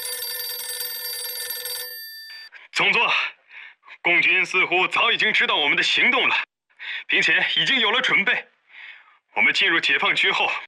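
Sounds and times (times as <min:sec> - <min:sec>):
telephone ringing with an electronic trill: 0:00.0 - 0:02.5
speech: 0:04.0 - 0:06.5, 0:07.1 - 0:08.5, 0:09.4 - 0:10.6.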